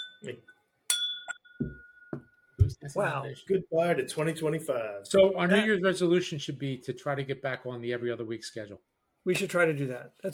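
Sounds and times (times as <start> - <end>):
glass ringing tone: 0.0 - 2.8
glasses clinking in a New Year's toast: 0.0 - 2.8
speech: 0.2 - 0.5, 2.8 - 10.3.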